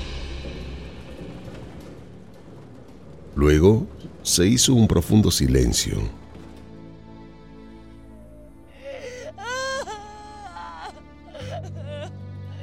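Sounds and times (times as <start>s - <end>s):
speech: 3.4s - 6.2s
woman crying and whimpering: 8.1s - 12.6s.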